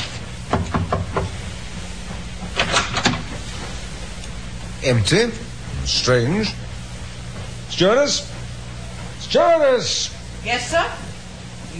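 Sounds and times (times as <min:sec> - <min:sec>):
low steady hum: 0:00.0 - 0:11.7
knocking on a cabin door: 0:00.5 - 0:01.3
speech: 0:04.8 - 0:06.6, 0:07.7 - 0:08.3, 0:09.3 - 0:11.0.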